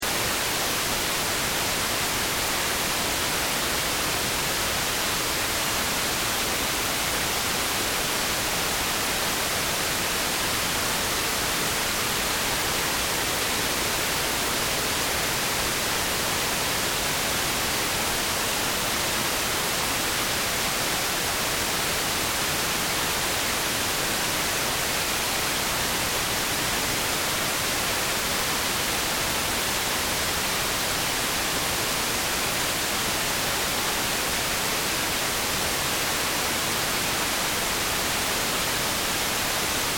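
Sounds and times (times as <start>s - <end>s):
television white noise with no reception: 0.0s - 39.9s.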